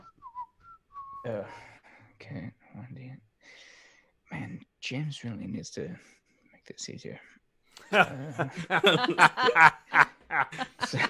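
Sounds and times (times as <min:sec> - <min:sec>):
person whistling imitating an arrow whistling through the air: 0:00.0 - 0:01.3
speech: 0:01.2 - 0:03.3, 0:04.5 - 0:11.0
laughter: 0:07.8 - 0:11.0.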